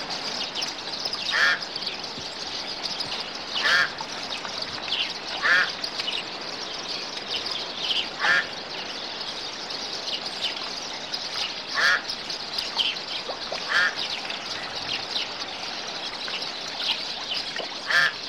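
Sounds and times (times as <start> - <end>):
busy chorus of birds chattering: 0.0 - 18.2
louder rasping bird calls: 1.2 - 1.7, 3.5 - 4.0, 5.4 - 5.8, 8.1 - 8.6, 11.7 - 12.1, 13.3 - 14.6, 17.8 - 18.2.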